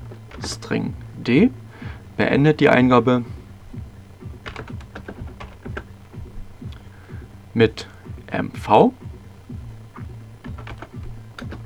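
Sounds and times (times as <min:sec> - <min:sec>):
typing text into a file on a computer keyboard: 0:00.0 - 0:00.9, 0:03.8 - 0:08.0, 0:09.9 - 0:11.6
speech: 0:00.5 - 0:01.6, 0:02.2 - 0:03.4, 0:07.6 - 0:09.0.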